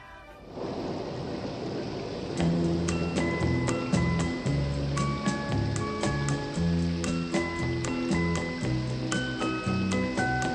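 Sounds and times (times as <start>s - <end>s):
steady falling rain: 0.0s - 10.5s
gentle melodic song intro with sustained tones and soft bass: 2.4s - 10.5s.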